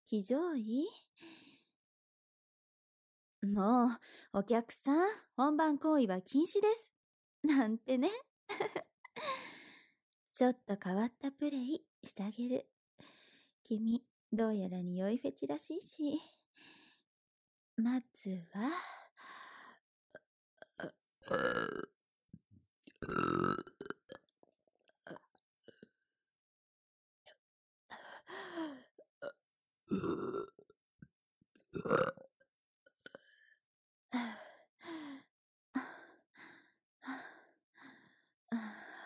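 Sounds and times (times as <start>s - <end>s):
speech: 0.1s - 1.4s, 3.4s - 9.5s, 10.4s - 16.8s, 17.8s - 19.4s, 20.8s - 21.9s, 31.8s - 32.1s
woman burping: 20.8s - 21.9s, 23.0s - 24.0s, 29.9s - 30.5s.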